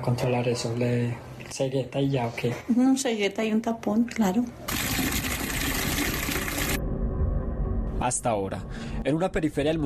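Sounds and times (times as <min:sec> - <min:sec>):
speech: 0:00.0 - 0:04.9, 0:08.0 - 0:09.8
water pouring into a container: 0:04.7 - 0:06.8.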